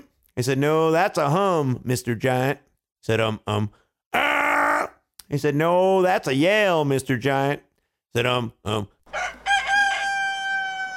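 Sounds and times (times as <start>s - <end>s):
speech: 0.4s - 4.3s, 5.3s - 9.0s
human voice imitating a rooster crowing: 4.2s - 5.0s, 9.1s - 10.9s.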